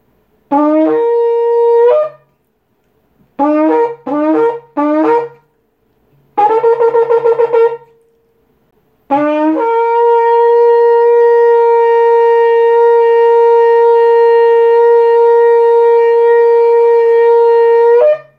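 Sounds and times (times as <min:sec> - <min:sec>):
shofar: 0:00.5 - 0:02.4, 0:03.4 - 0:05.5, 0:06.4 - 0:08.3, 0:09.1 - 0:18.3.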